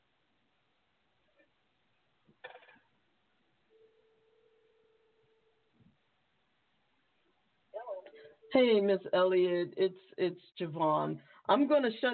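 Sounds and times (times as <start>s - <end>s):
phone ringback tone over a tinny line: 3.7s - 5.7s
speech: 8.5s - 12.1s.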